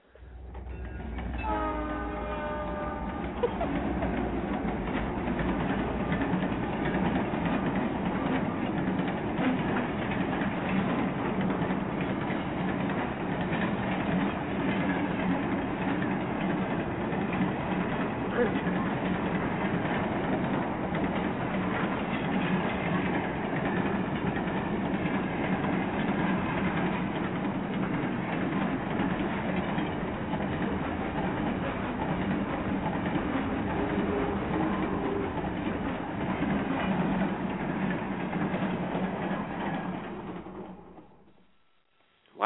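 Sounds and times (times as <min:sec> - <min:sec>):
diesel train engine and rolling cars rumbling past: 0:00.0 - 0:41.5
diesel train horn blaring: 0:00.7 - 0:03.5, 0:33.7 - 0:35.7.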